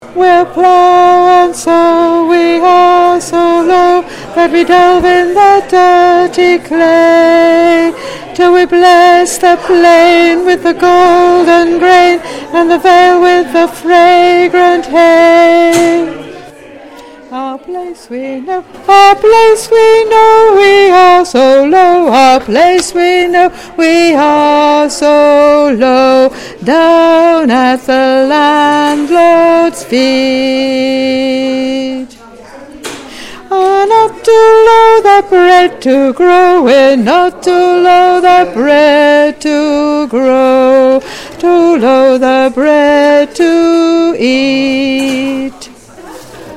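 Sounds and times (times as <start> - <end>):
alto voice: 0.0 - 16.4, 17.3 - 32.1, 33.5 - 45.7.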